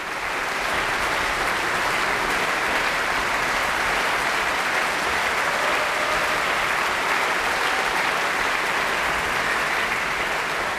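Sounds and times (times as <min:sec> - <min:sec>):
large concert audience applauding: 0:00.0 - 0:10.7
concert audience cheering: 0:05.3 - 0:08.5.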